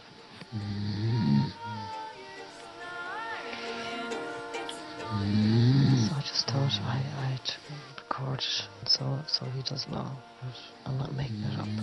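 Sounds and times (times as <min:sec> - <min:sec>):
faint hum: 0:00.0 - 0:11.8
speech: 0:00.5 - 0:01.0, 0:09.4 - 0:11.8
person snoring loudly at night: 0:00.5 - 0:02.0, 0:04.8 - 0:06.9, 0:11.2 - 0:11.8.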